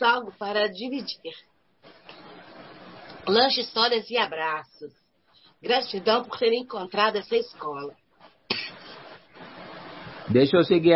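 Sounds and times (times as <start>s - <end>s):
speech: 0.0s - 1.5s, 3.2s - 5.0s, 5.6s - 8.0s, 10.3s - 10.9s
woman with a persistent cough coughing: 8.5s - 9.0s.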